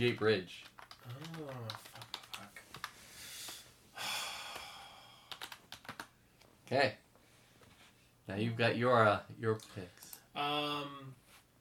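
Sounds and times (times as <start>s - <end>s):
speech: 0.0s - 1.9s, 6.7s - 7.0s, 8.3s - 11.2s
fast typing on a laptop keyboard resting on a lap: 0.0s - 3.0s, 4.5s - 6.1s.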